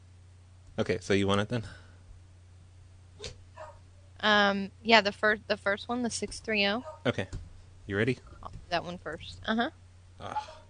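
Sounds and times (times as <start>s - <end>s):
steady low hum: 0.0s - 10.6s
speech: 0.8s - 1.8s, 4.2s - 10.6s
faint dog barks in the background: 3.2s - 4.1s, 6.8s - 7.3s, 10.2s - 10.6s.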